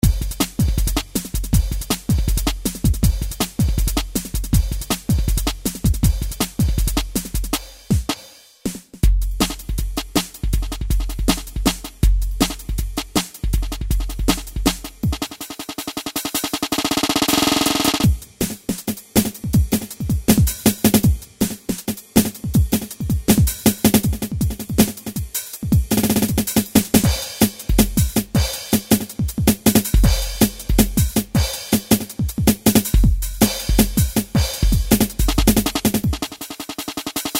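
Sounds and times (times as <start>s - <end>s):
drum machine drum and bass beat: 0.0s - 37.3s.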